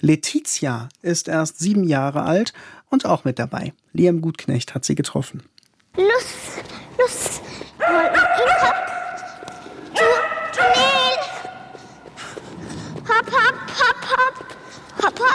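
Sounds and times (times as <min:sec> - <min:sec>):
speech: 0:00.0 - 0:07.2
Shetland Sheepdog barking high-pitched while running an agility course: 0:07.8 - 0:11.8
laughter: 0:13.0 - 0:15.3.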